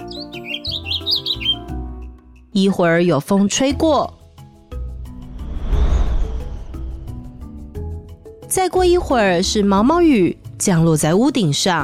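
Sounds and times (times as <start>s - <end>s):
birds singing outdoors: 0.0s - 2.0s
speech: 2.6s - 4.2s, 8.5s - 11.8s.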